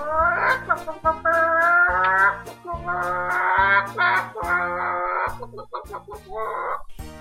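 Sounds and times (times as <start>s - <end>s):
chickens clucking: 0.0s - 7.0s.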